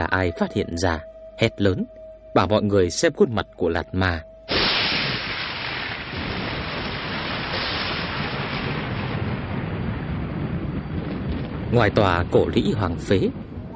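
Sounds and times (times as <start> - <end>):
speech: 0.0 - 4.3, 11.7 - 13.4
deep rumbling thunder outside an ancient ruined fortress after rain: 4.5 - 13.7.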